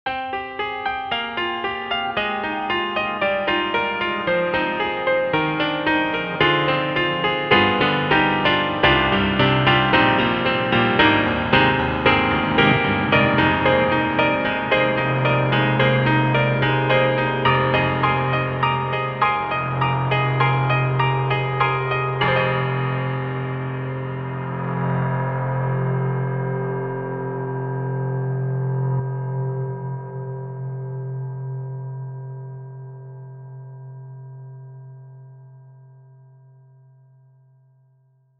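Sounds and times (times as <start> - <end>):
treated reversed piano: 0.1 - 35.4.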